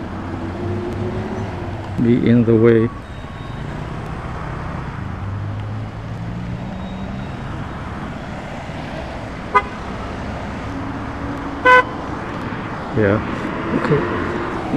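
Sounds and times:
motorcycle and pickup truck driving past: 0.0 - 14.7
speech: 2.0 - 3.1, 13.0 - 14.7
vehicle horn toots: 9.5 - 9.9, 11.6 - 12.0.

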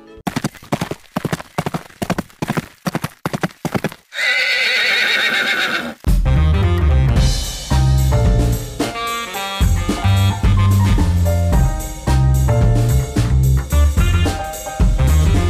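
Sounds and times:
music: 0.0 - 0.2, 6.1 - 15.4
horse hooves clip-clopping: 0.2 - 6.1
horse whinnying: 4.1 - 6.0.

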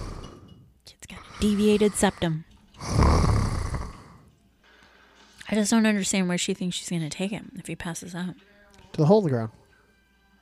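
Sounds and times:
boy breathing heavily through the mouth: 1.2 - 3.1
speech: 1.4 - 3.0, 5.5 - 9.6.

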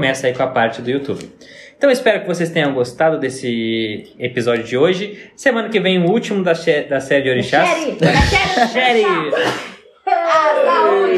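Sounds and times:
speech: 0.0 - 11.1
laughter: 7.8 - 9.8
sneeze: 9.3 - 9.8.

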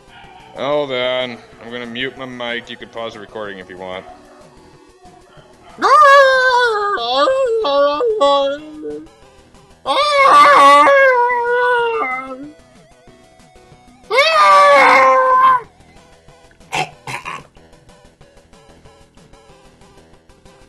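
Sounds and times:
dogs howling: 0.0 - 0.7, 5.4 - 9.1, 9.9 - 12.5, 14.1 - 15.7
speech: 0.6 - 4.2, 7.0 - 9.2, 9.8 - 11.4.

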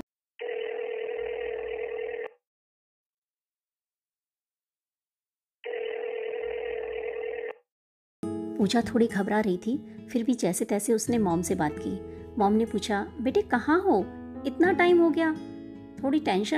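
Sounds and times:
phone ringing for incoming call: 0.4 - 2.4, 5.6 - 7.6
speech: 8.6 - 16.5.

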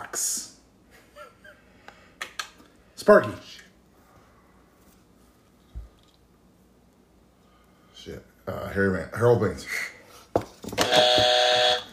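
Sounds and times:
speech: 0.1 - 0.4, 3.1 - 3.5, 8.5 - 9.9
harsh loud game show buzzer: 10.8 - 11.9.

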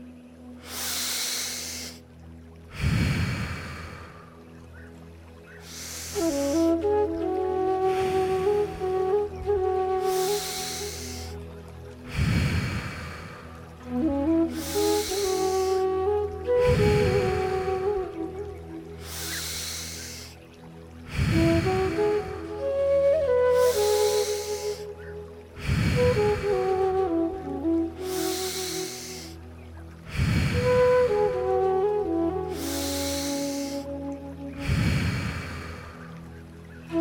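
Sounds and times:
soft sustained musical tones: 0.0 - 36.9
slow deep breathing in and out: 0.6 - 6.7, 10.1 - 13.8, 14.6 - 15.8, 19.0 - 20.4, 21.0 - 22.4, 23.6 - 24.8, 25.6 - 26.7, 28.0 - 29.4, 30.0 - 30.8, 32.5 - 33.9, 34.6 - 36.4.

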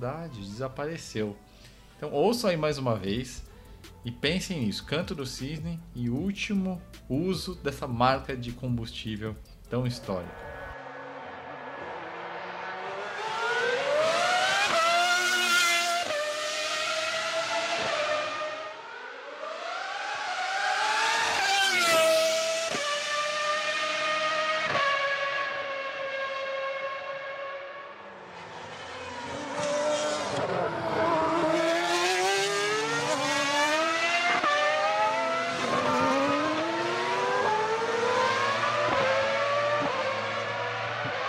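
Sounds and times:
speech: 0.0 - 10.5
naturally aspirated Formula 1 V12 engine revving with gear changes: 10.1 - 41.2.

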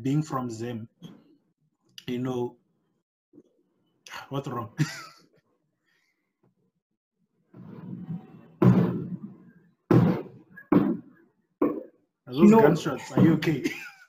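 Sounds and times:
speech: 0.0 - 1.0, 2.1 - 2.6, 4.1 - 5.2, 12.3 - 13.9
fireworks exploding outside: 7.9 - 11.0.

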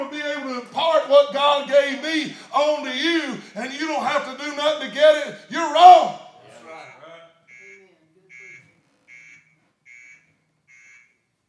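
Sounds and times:
speech: 0.8 - 6.2
alarm beeping with loud electronic pulses: 7.4 - 11.4.

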